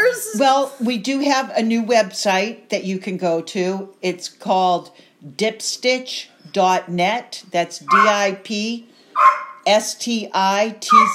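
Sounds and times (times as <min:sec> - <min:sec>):
speech: 0:00.4 - 0:11.1
dog barking: 0:07.9 - 0:08.2, 0:09.2 - 0:09.7, 0:10.9 - 0:11.1.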